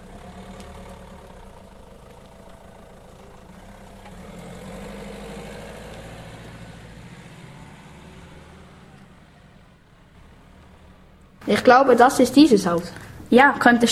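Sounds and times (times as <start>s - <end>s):
car engine running while driving: 0.0s - 13.6s
speech: 11.4s - 13.9s.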